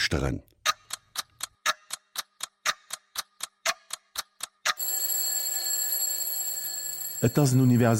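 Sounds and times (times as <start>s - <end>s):
speech: 0.0s - 0.5s, 7.2s - 7.9s
clock ticking: 0.4s - 5.1s
loud continuous alarm bell ringing: 4.8s - 7.9s.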